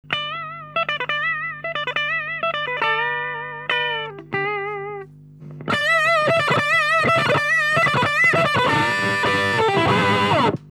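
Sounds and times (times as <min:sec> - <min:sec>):
overdrive distortion solo: 0:00.0 - 0:10.7.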